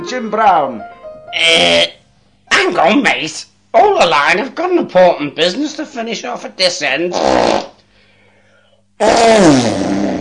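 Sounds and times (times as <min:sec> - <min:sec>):
speech: 0:00.0 - 0:02.0, 0:02.6 - 0:07.7, 0:09.0 - 0:09.8
raspy fart: 0:07.1 - 0:07.8, 0:09.0 - 0:10.1.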